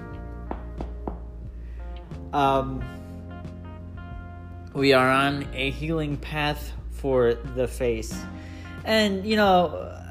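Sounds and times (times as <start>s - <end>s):
knuckles knocking on wood: 0.4s - 1.4s
speech: 2.1s - 3.0s, 4.8s - 10.1s.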